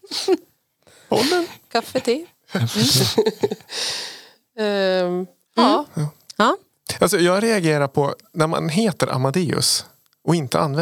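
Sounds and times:
speech: 0.3s - 0.5s, 1.2s - 10.8s
person sneezing: 1.1s - 1.6s
laughter: 2.6s - 3.8s.

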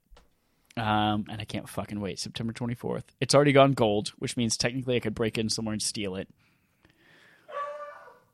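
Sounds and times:
speech: 0.8s - 6.5s
dog barking: 7.5s - 8.2s.

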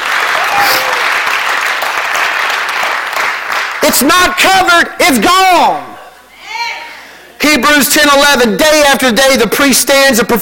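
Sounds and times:
audience clapping hands: 0.0s - 4.4s
speech: 3.9s - 5.9s, 7.4s - 10.4s.

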